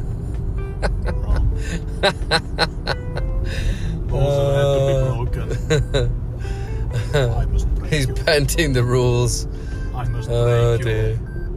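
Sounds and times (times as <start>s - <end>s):
low hum of the moving car: 0.0s - 11.5s
speech: 1.7s - 4.6s, 5.5s - 6.2s, 8.3s - 9.6s, 10.3s - 11.2s
car speed limit warning beep: 9.6s - 11.5s.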